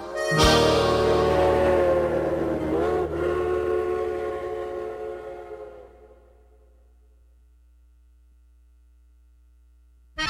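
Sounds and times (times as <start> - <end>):
steam train whistle blasts: 0.1 - 6.4
low steady hum: 0.5 - 10.2.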